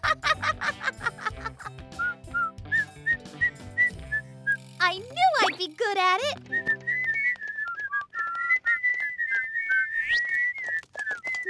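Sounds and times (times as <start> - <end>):
laughter: 0.0 - 1.8
several people whistling a wavering tune together: 1.9 - 4.7, 6.5 - 11.4
speech: 5.9 - 6.4.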